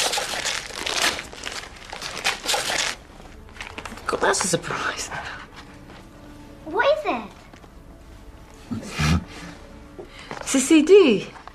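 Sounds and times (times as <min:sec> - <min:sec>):
gift wrapping paper being ripped open off a present: 0:00.0 - 0:04.4
speech: 0:04.1 - 0:05.4, 0:10.5 - 0:11.4.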